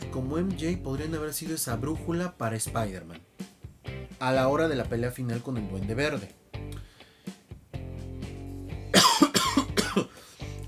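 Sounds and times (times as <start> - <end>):
speech: 0.2 - 3.4, 4.2 - 6.4
person coughing: 8.9 - 10.2.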